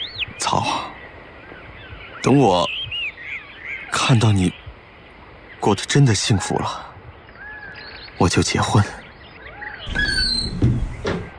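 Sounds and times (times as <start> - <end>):
speech: 0.5 - 0.9, 2.2 - 2.8, 4.0 - 4.6, 5.6 - 6.9, 8.2 - 9.0
door creaking and squealing as it opens: 9.8 - 11.3
dull knocks and thuds from the door handle and frame: 9.9 - 11.3.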